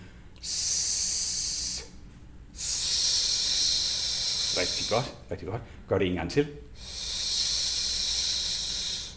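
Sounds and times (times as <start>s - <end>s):
person exhaling through the teeth making an S sound as a voice exercise: 0.4s - 2.0s, 2.6s - 5.3s, 6.8s - 9.1s
speech: 4.6s - 6.7s.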